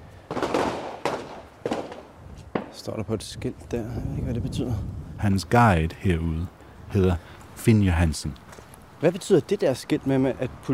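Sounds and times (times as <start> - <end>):
gunshots at a shooting range in Copenhagen: 0.3 - 2.8
speech: 2.8 - 8.4, 9.0 - 10.7.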